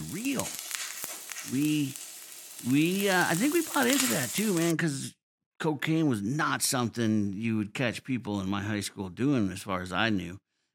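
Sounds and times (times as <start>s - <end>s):
egg sizzling in a frying pan: 0.0s - 4.7s
speech: 1.5s - 2.0s, 2.6s - 10.4s.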